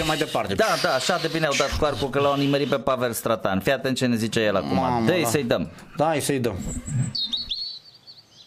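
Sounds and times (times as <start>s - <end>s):
speech: 0.0s - 7.5s
small birds chirping and warbling: 6.6s - 8.4s.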